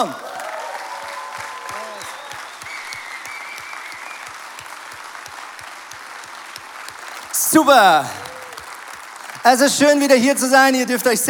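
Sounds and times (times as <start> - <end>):
speech: 0.0 - 0.2, 7.5 - 8.2, 9.4 - 11.2
sustained applause from a large audience: 0.0 - 10.8
faint cheers or whistles from an audience: 0.4 - 4.7.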